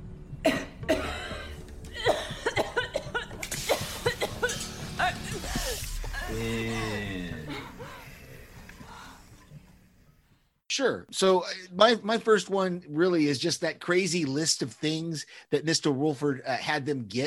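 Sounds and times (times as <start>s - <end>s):
person coughing harshly: 0.4s - 5.8s
throaty vocal sounds: 3.6s - 9.0s
voiced murmur: 6.1s - 8.7s
speech: 10.9s - 17.2s.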